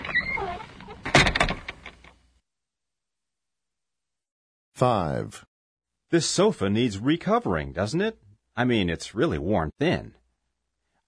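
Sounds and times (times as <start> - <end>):
loose door scraping creak: 0.0 - 2.1
speech: 4.8 - 5.5, 6.1 - 10.2.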